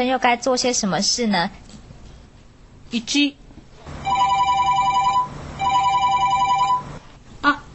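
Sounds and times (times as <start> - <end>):
speech: 0.0 - 1.7, 2.9 - 3.4
electronic telephone ringing: 4.0 - 7.0.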